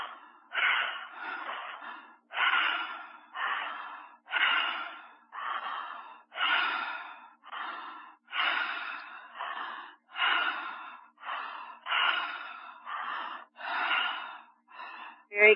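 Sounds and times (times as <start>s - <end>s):
quick steady breaths through the mouth during a guided breathing exercise: 0.0s - 15.5s
speech: 15.4s - 15.5s.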